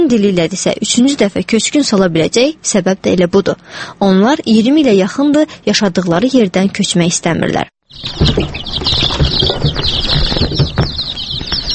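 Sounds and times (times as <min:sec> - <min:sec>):
speech: 0:00.1 - 0:09.0
chicks chirping: 0:07.9 - 0:11.7
soft thumps: 0:08.0 - 0:11.7.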